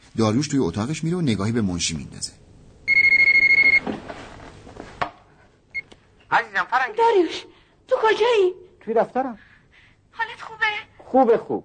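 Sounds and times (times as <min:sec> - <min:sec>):
speech: 0:00.2 - 0:02.5, 0:06.9 - 0:09.5, 0:11.1 - 0:11.6
telephone ringing: 0:02.9 - 0:03.8.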